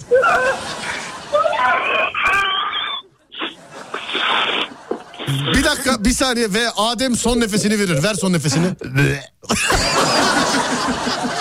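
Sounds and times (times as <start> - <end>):
laughter: 0.0 - 2.4, 3.4 - 6.0, 9.5 - 11.4
voice imitating someone being sucked to death with sucking and slurping: 2.2 - 5.8
speech: 5.3 - 10.1.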